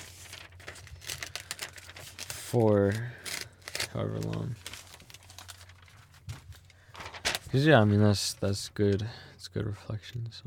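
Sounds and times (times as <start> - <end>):
piece of paper being handled, crinkling and rustling: 0.0 - 9.0
low steady hum: 0.0 - 10.4
speech: 2.5 - 3.2, 3.9 - 4.6, 7.5 - 10.4.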